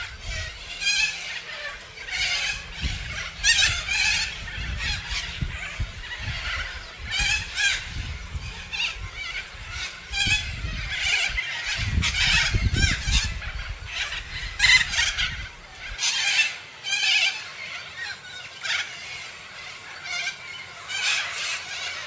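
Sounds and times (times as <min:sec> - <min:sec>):
low rumbling background noise: 0:00.0 - 0:15.9
Major Mitchell's cockatoo giving harsh trembling screeches: 0:00.0 - 0:22.0.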